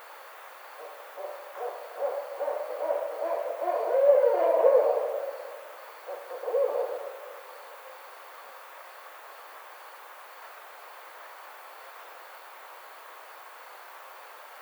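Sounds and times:
barred owl hooting: 0.8 - 8.0.

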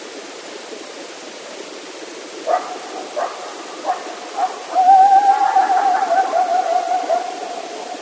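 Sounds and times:
coyote barking and howling: 2.5 - 7.9.

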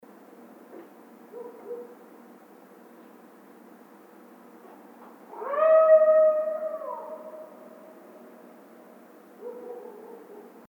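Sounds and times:
coyote howling: 5.3 - 8.2.

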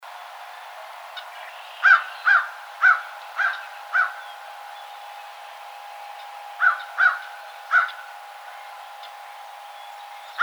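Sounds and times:
American crow giving harsh caws: 1.8 - 4.2, 6.6 - 8.0.

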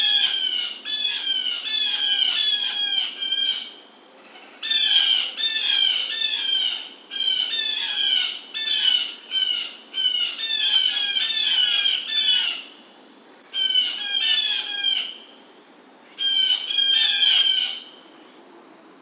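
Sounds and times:
blue jay harsh jay notes: 0.0 - 18.3.

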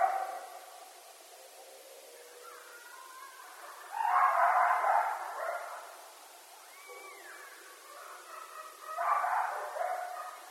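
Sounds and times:
several coyotes howling: 1.5 - 5.9, 6.6 - 10.4.

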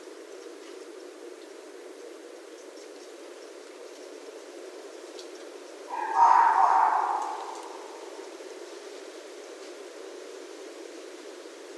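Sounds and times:
red fox hoarse drawn-out cry: 5.9 - 8.2.

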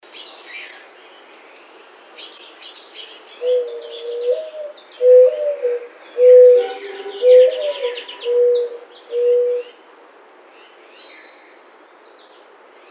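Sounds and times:
birds chirping: 2.4 - 9.8
mourning dove cooing: 3.4 - 9.8.

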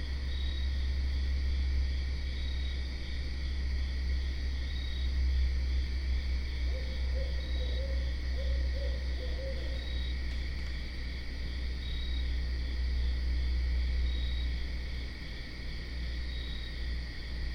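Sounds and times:
steady insect trilling: 0.0 - 17.5
barred owl calling with muffled low hoots: 6.6 - 10.2.

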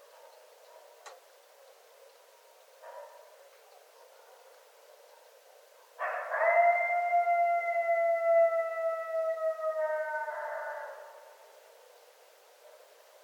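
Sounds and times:
coyotes howling at night: 6.0 - 11.4.

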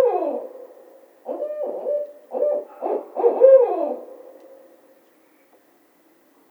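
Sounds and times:
barred owl giving low throaty hoots: 0.0 - 4.8.

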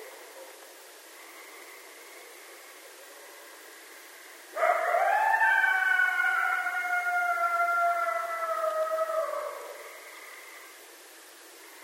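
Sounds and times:
coyote howling: 4.6 - 10.1.

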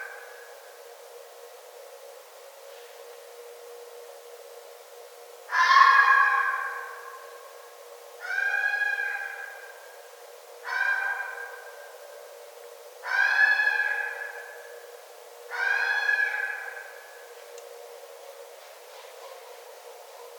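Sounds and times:
red fox giving hoarse harmonic wails: 5.5 - 7.0, 8.2 - 9.6, 10.6 - 11.7, 13.0 - 14.5, 15.5 - 16.9.

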